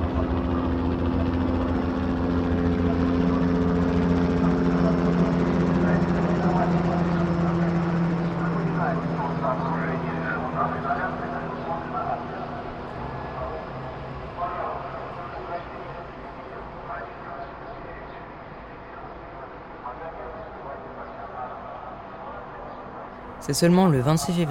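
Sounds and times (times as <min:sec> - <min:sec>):
aircraft engine droning from search planes: 0:00.0 - 0:17.6, 0:23.1 - 0:24.4
helicopter rotor throbbing from search helicopters: 0:00.0 - 0:18.4
speech: 0:23.5 - 0:24.4.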